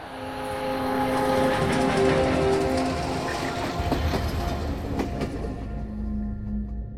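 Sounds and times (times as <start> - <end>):
heavy train of cattle wagons rumbling on rails: 0.0 - 6.8
cattle wagons rattling and screeching: 0.4 - 6.0.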